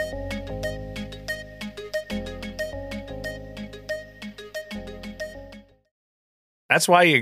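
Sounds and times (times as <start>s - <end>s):
melodic synthesized phone ringtone: 0.0s - 5.6s
speech: 6.7s - 7.1s.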